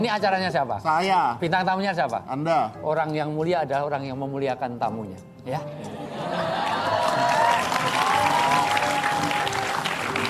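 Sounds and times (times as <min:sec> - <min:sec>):
speech: 0:00.0 - 0:06.5
laughter: 0:05.8 - 0:07.7
audience applauding: 0:06.3 - 0:10.2.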